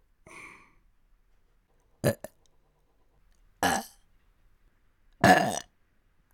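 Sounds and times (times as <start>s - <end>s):
person burping throatily: 2.1s - 2.3s, 3.7s - 3.9s, 5.2s - 5.7s.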